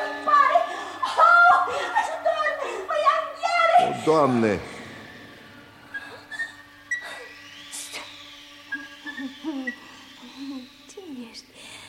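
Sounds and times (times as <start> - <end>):
steady low hum: 0.0 - 11.8
speech: 4.0 - 4.7
bird hooting: 4.9 - 11.3.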